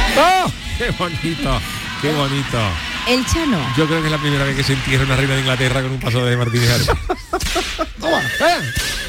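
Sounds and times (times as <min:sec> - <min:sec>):
laughter: 0:00.2 - 0:01.6, 0:06.1 - 0:09.0
speech: 0:00.2 - 0:09.0
carriage horse neighing: 0:08.1 - 0:09.0.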